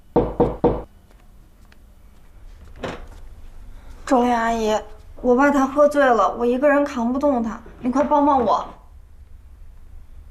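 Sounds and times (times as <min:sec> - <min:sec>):
firm knocking on a door: 0:00.1 - 0:00.9
speech: 0:04.1 - 0:08.8.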